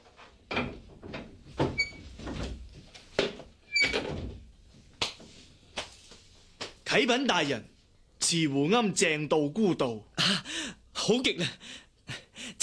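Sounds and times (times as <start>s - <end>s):
door creaking: 0.5s - 2.6s, 3.7s - 4.4s
wooden door thumps and clunks: 0.5s - 4.5s
speech: 7.0s - 7.7s, 8.3s - 11.8s.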